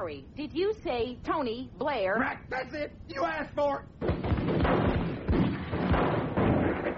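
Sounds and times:
speech: 0.0 - 5.1
loud booming gunshots fired at a telephone: 4.0 - 6.9.

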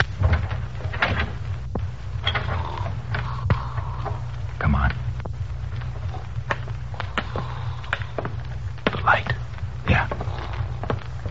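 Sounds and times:
door being opened: 0.0 - 1.5, 2.1 - 3.3
low steady rumble: 0.0 - 11.2.

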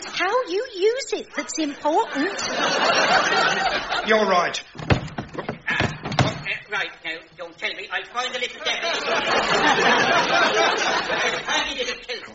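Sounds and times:
speech: 0.2 - 4.9, 6.7 - 12.3
laughter: 1.4 - 4.6, 8.5 - 12.3
door banging and rattling as a man fumbles with it: 4.7 - 6.5.

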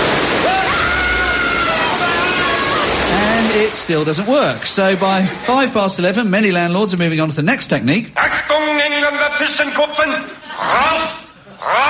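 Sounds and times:
steady loud hiss of spraying water: 0.0 - 5.8
speech: 3.9 - 11.8.

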